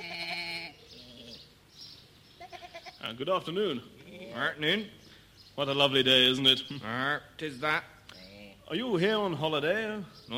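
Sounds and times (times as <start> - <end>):
sheep bleating: 0.0 - 1.4, 2.4 - 3.1
speech: 3.0 - 5.0, 5.6 - 7.9, 8.7 - 10.3.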